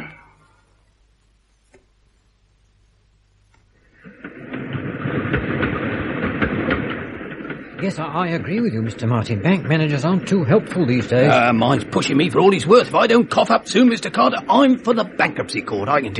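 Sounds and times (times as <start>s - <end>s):
faint clicking: 3.5s - 4.4s
rhythmic clatter: 4.0s - 16.1s
train arriving at a station: 4.0s - 16.1s
speech: 7.9s - 16.1s.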